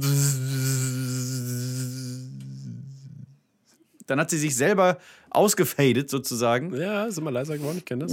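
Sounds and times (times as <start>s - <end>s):
voice imitating a loud buzzing wasp: 0.0s - 3.2s
speech: 4.1s - 8.1s.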